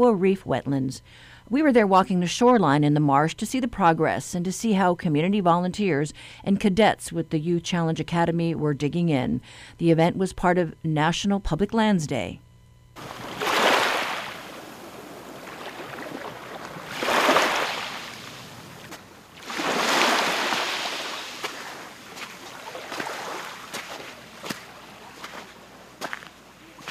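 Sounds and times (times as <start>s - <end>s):
speech: 0.0s - 12.4s, 13.0s - 13.3s
small waves washing onto the beach: 13.0s - 26.1s.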